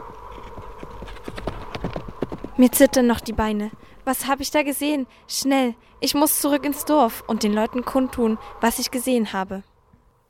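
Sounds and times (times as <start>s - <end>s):
horse hooves clip-clopping as a rider rides off: 0.0s - 4.0s
speech: 2.6s - 9.7s.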